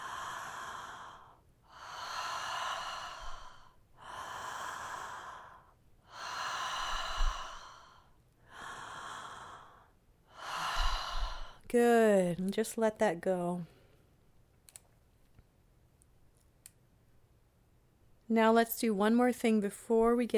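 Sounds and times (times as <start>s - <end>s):
steady audible mouth breathing with long airy inhales and exhales: 0.0s - 11.7s
speech: 11.7s - 13.8s, 18.3s - 20.3s.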